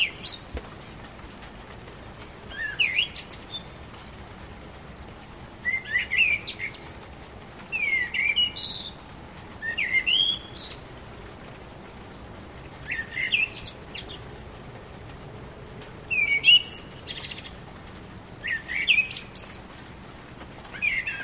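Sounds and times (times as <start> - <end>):
common blackbird singing warbled phrases with high scratchy twitter: 0.0 - 0.9, 2.5 - 3.8, 5.6 - 7.0, 7.7 - 9.0, 9.6 - 10.9, 12.8 - 14.2, 16.1 - 17.6, 18.4 - 19.7, 20.7 - 21.2.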